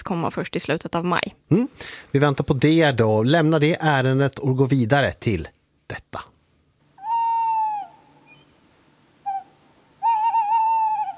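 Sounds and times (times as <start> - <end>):
speech: 0.1 - 6.3
Norwegian tawny owl hooting in Åre: 7.0 - 8.6, 9.2 - 11.1.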